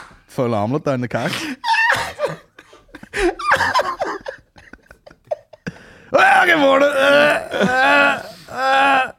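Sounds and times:
speech: 0:00.4 - 0:01.6, 0:06.1 - 0:09.0
laughter: 0:01.8 - 0:05.8
person yawning with a voiced groaning exhale: 0:06.8 - 0:09.1.

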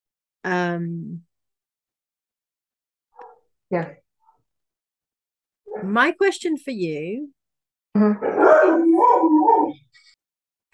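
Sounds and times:
speech: 0:00.4 - 0:01.3, 0:03.7 - 0:04.0, 0:05.8 - 0:09.4
dog howling: 0:08.2 - 0:09.8.

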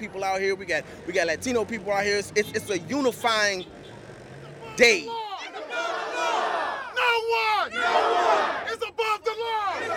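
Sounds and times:
speech: 0:00.0 - 0:03.8, 0:04.8 - 0:05.2, 0:07.2 - 0:09.1
large protest crowd shouting together in a sustained chant: 0:05.3 - 0:08.8, 0:09.6 - 0:09.9.

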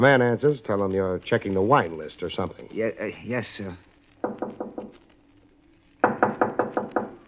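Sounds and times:
speech: 0:00.0 - 0:03.9
knocking on a door: 0:04.2 - 0:04.9, 0:06.0 - 0:07.2.

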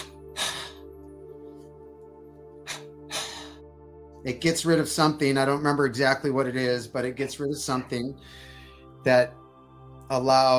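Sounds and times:
breathy double exhalations during a relaxation breathing exercise: 0:00.0 - 0:01.8, 0:02.6 - 0:03.7, 0:08.2 - 0:08.9
speech: 0:04.2 - 0:09.4, 0:10.1 - 0:10.5.

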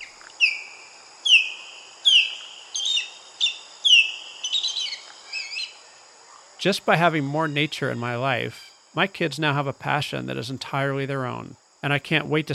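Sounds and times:
osprey whistled chirps: 0:00.0 - 0:05.8
speech: 0:06.6 - 0:12.5.

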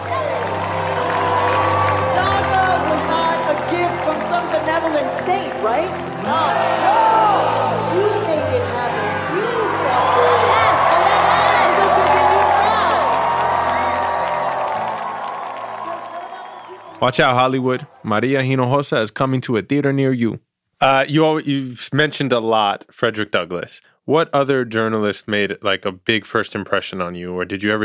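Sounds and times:
large crowd of protesters cheering and shouting: 0:00.0 - 0:18.3
speech: 0:05.3 - 0:06.9, 0:17.0 - 0:27.8.

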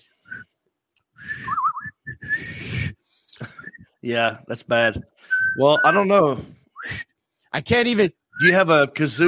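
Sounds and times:
weak breathy whistling with the lips by a person with Bell's palsy: 0:00.0 - 0:00.6, 0:01.2 - 0:04.0, 0:05.0 - 0:07.2
speech: 0:04.0 - 0:07.0, 0:07.6 - 0:09.2.

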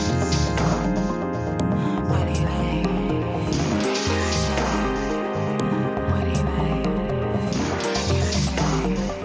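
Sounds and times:
dense experimental music with low pulse and shimmering tones: 0:00.0 - 0:09.2.

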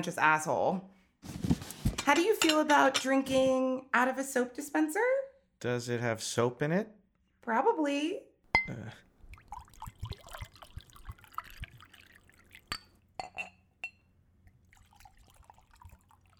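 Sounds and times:
speech: 0:00.0 - 0:01.5, 0:02.1 - 0:09.0
glass clinks: 0:08.6 - 0:08.9, 0:12.7 - 0:14.0
soft drips of whiskey: 0:08.6 - 0:13.1, 0:13.8 - 0:16.3
whiskey poured into a glass: 0:09.2 - 0:13.0, 0:14.4 - 0:16.3.

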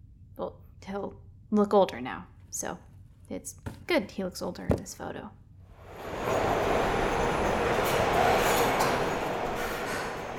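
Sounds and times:
speech: 0:00.4 - 0:05.4
subway train rumbling through station: 0:05.7 - 0:10.3.

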